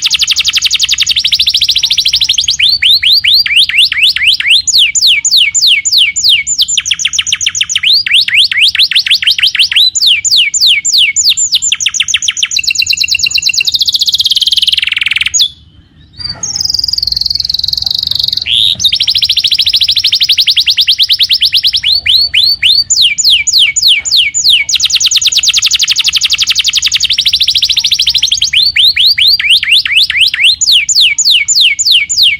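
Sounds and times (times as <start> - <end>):
young canary training song with trills and whistles: 0.0 - 32.3.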